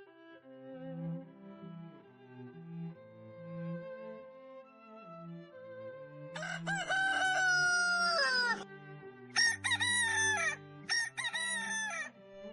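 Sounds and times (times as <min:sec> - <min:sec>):
young rooster crowing at dawn from a straw pile in a yard: 0:06.4 - 0:08.6, 0:09.4 - 0:12.1.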